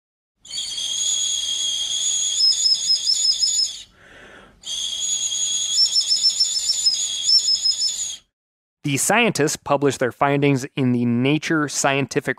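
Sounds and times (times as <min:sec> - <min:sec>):
replica prehistoric bone whistle made from mallard bones: 0:00.4 - 0:04.0, 0:04.6 - 0:08.3
speech: 0:08.9 - 0:12.3.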